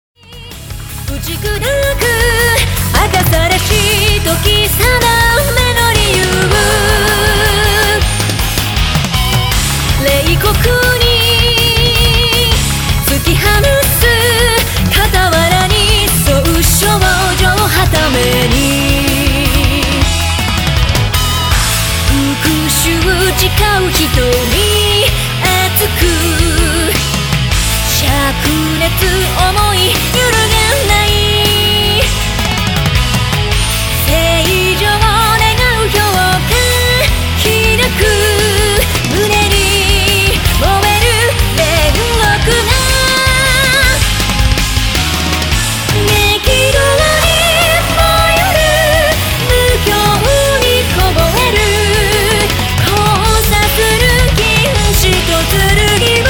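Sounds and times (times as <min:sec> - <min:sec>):
pop rock music: 0:00.2 - 0:56.2.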